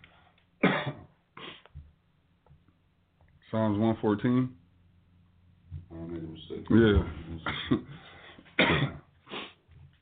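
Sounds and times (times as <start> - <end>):
person clearing throat: 0.6 - 1.6, 7.4 - 7.9, 8.6 - 9.1
person coughing: 0.6 - 1.6, 7.4 - 9.1
speech: 3.5 - 4.6, 6.4 - 8.0.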